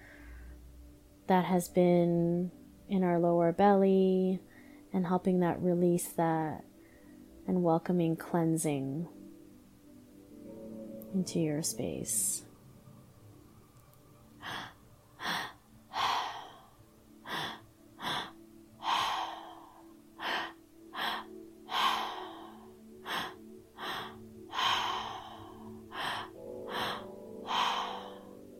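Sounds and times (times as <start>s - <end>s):
speech: 1.3s - 6.7s, 7.5s - 9.2s, 11.1s - 12.5s
rapid forceful breathing during breathwork exercise: 14.4s - 28.5s.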